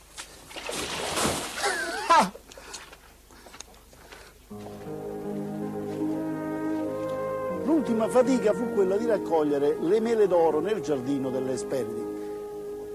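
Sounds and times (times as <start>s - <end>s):
rushing river water splashing: 0.4s - 2.0s
sustained musical tone: 4.5s - 12.9s
speech: 8.0s - 12.1s.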